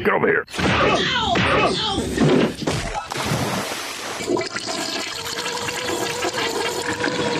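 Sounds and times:
speech: 0.0 - 2.9
toilet flushing with swirling bubbling water: 4.1 - 7.3.

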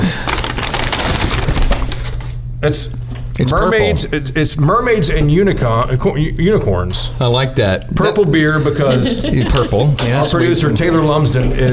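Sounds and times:
paper bag holding a drink crinkling and rustling: 0.0 - 2.4
speech: 2.6 - 11.7
laughter: 8.4 - 10.7.

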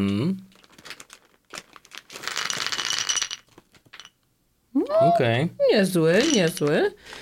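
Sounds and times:
handful of small hard candy dragées pouring into a ceramic bowl: 0.5 - 4.2, 6.2 - 6.9
speech: 5.0 - 7.2.

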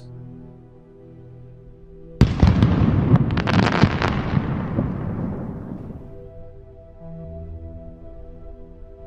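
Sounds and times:
fireworks bang: 2.2 - 6.3.

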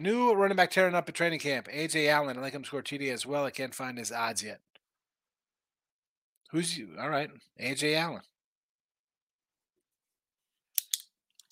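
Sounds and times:
speech: 0.0 - 4.7, 6.5 - 8.3
pen clicking: 10.8 - 11.5.

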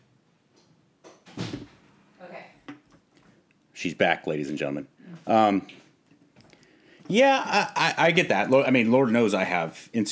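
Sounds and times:
door swinging shut with a scrape and thud: 1.2 - 1.8
speech: 3.8 - 5.8, 7.1 - 10.1.

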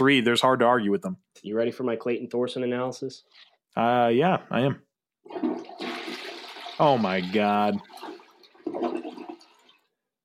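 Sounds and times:
speech: 0.0 - 5.5, 6.8 - 8.1
toilet flushing: 5.2 - 10.0.

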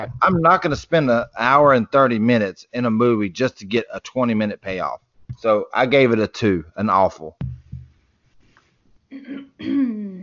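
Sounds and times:
speech: 0.0 - 7.5, 9.1 - 10.2
woman clearing her throat in a horror film scene: 9.1 - 10.2.

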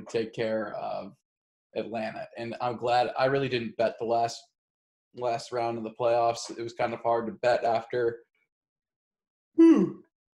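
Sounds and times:
speech: 0.1 - 4.5, 5.1 - 8.3, 9.6 - 10.0
person yawning: 9.6 - 10.0.

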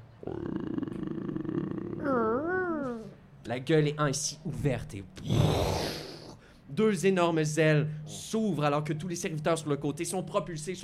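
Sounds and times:
chained monster creature growling and roaring: 0.2 - 3.0, 5.2 - 6.4
speech: 3.5 - 5.9, 6.8 - 10.8.

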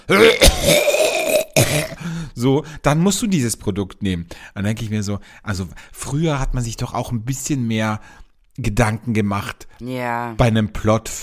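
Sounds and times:
speech: 0.0 - 0.8, 2.4 - 11.2
person imitating a cough with a strained throaty voice: 0.1 - 2.0.

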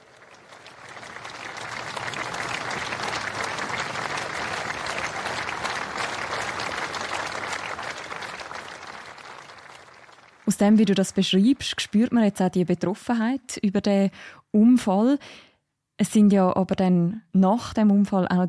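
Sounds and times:
large outdoor crowd of spectators applauding at a cycling race finish: 0.0 - 12.1
speech: 10.5 - 18.4.

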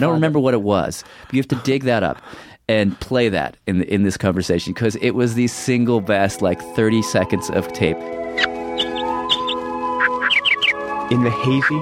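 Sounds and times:
speech: 0.0 - 8.5, 11.1 - 11.8
birds chirping morning songs at a shore: 8.2 - 11.8.

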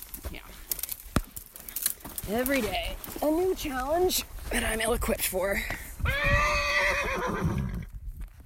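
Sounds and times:
speech: 2.3 - 7.5
horse whinnying: 6.0 - 7.9.

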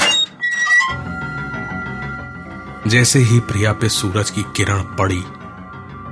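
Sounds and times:
iron door creaking open with a high squeal: 0.0 - 1.3
speech: 2.8 - 5.4.

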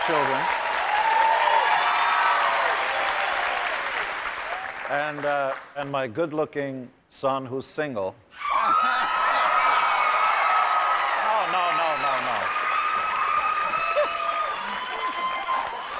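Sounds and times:
crowd cheers and whoops: 0.0 - 4.8, 8.4 - 15.9
large crowd applauding: 0.0 - 5.7, 8.6 - 15.9
speech: 0.1 - 0.6, 4.9 - 9.0.

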